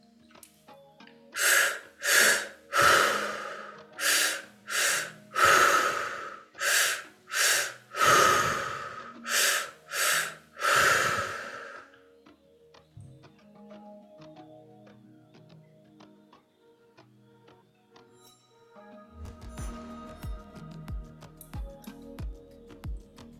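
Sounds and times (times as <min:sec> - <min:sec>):
forceful breathing deep into the belly during a guided breathing exercise: 0:01.4 - 0:12.0.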